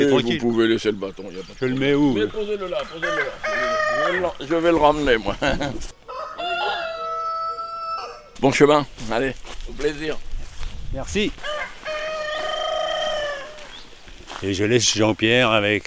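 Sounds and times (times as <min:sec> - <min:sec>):
speech: 0:00.0 - 0:06.0, 0:08.4 - 0:10.3, 0:10.9 - 0:11.5, 0:14.4 - 0:15.8
rooster crowing: 0:03.0 - 0:04.5, 0:06.0 - 0:08.4, 0:11.3 - 0:13.9
laughter: 0:05.0 - 0:06.0.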